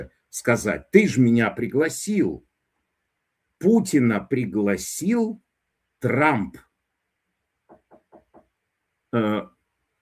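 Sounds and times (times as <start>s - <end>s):
speech: 0.0s - 2.5s, 3.6s - 5.4s, 6.0s - 6.7s, 9.1s - 10.0s
knocks on a door: 7.7s - 8.6s.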